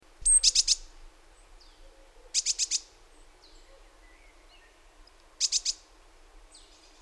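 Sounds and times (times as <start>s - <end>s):
great tit calls: 0.2s - 0.9s, 1.6s - 5.9s.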